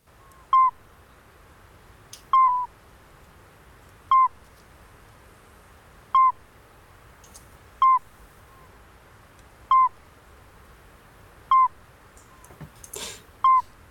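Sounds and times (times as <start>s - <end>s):
midwife toad calling: 0.1s - 0.8s, 2.3s - 2.7s, 4.1s - 4.4s, 6.1s - 6.4s, 7.2s - 8.8s, 9.7s - 10.0s, 11.5s - 12.5s.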